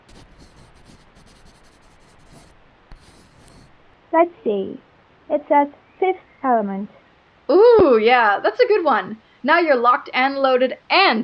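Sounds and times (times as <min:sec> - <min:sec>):
kid writing with a pen on paper from a car's glove box: 0:00.0 - 0:03.9
speech: 0:04.1 - 0:11.2.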